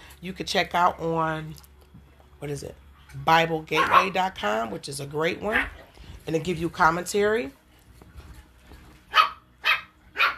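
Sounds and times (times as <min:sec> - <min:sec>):
speech: 0:00.2 - 0:01.7, 0:02.4 - 0:07.6
female pet dog barking: 0:03.8 - 0:04.2, 0:09.1 - 0:10.3.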